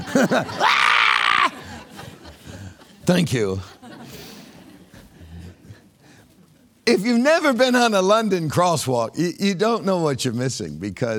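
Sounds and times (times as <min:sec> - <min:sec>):
laughter: 0:00.0 - 0:06.0
speech: 0:00.2 - 0:00.9, 0:03.1 - 0:03.8, 0:06.9 - 0:11.1
person imitating a high shrill scream: 0:00.6 - 0:01.6.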